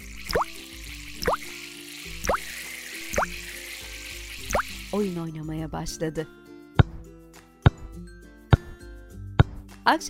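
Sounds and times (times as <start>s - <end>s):
water drops blooping as a child washes her hands: 0.2s - 1.6s, 2.2s - 2.5s, 3.1s - 3.4s, 4.4s - 4.8s
speech: 5.0s - 6.4s, 9.8s - 10.0s.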